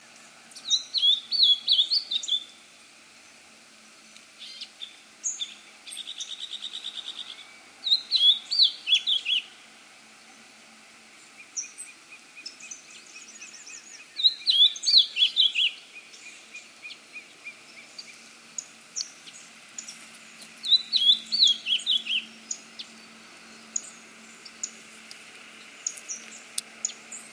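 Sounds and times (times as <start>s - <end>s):
Cyanocompsa brissonii calling: 0.5s - 2.6s, 4.4s - 9.6s, 11.3s - 27.3s.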